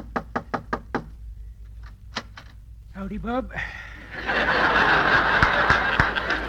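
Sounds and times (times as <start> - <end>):
knocking on a wooden door: 0.0 - 1.2
speech: 3.0 - 4.8
laughter: 4.0 - 6.4.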